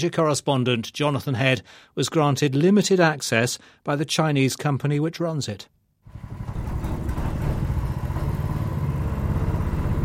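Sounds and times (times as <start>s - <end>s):
speech: 0.0s - 6.4s
faint rattling clatter: 6.1s - 9.0s
small metal boat motor droning while crossing a narrow brown river: 6.1s - 10.0s.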